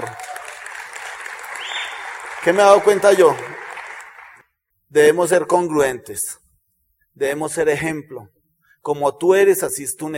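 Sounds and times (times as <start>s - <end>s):
audience applause from a crowd: 0.0s - 4.4s
faint whistle or cheer: 1.5s - 2.2s
speech: 2.4s - 3.5s, 4.9s - 6.4s, 7.2s - 10.1s.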